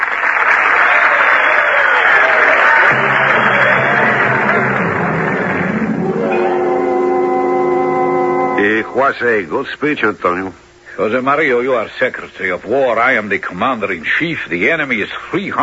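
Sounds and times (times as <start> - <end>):
large crowd applauding after a speech: 0.0 - 9.0
music: 2.8 - 9.4
speech: 9.0 - 15.6.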